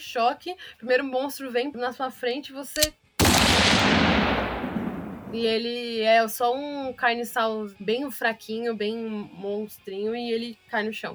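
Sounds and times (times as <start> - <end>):
speech: 0.0 - 4.6, 5.3 - 11.1
gunshot with long tail: 3.2 - 5.6.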